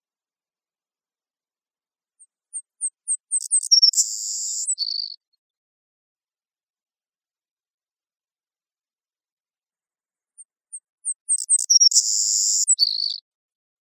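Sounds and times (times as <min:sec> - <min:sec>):
Savannah sparrow singing in Costa Rica: 0:02.2 - 0:05.4, 0:10.3 - 0:13.3.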